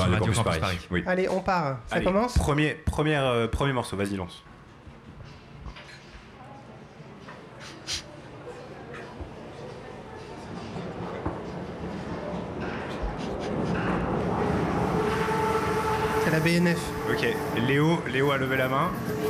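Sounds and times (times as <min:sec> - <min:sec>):
speech: 0:00.1 - 0:04.5, 0:16.5 - 0:19.2
indistinct voices murmuring: 0:04.9 - 0:19.2
Paris metro train rumbling along the rails: 0:09.9 - 0:19.2.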